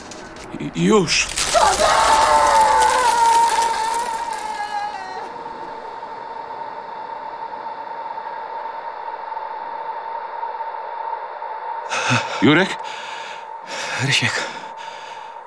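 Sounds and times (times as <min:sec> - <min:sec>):
speech: 0:00.5 - 0:02.0, 0:12.4 - 0:12.8, 0:14.0 - 0:14.6
person screaming: 0:01.4 - 0:05.3
high-pitched ringing tone: 0:02.3 - 0:15.4.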